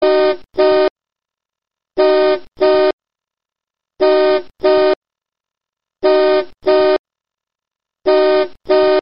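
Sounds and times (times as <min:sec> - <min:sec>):
car horn used as ring: 0:00.0 - 0:00.9, 0:02.0 - 0:03.0, 0:04.0 - 0:05.0, 0:06.0 - 0:07.0, 0:08.1 - 0:09.0.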